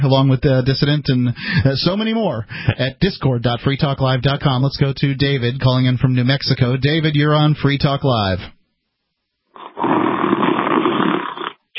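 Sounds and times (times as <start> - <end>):
speech: 0.0 - 8.6
person snoring: 9.6 - 11.7.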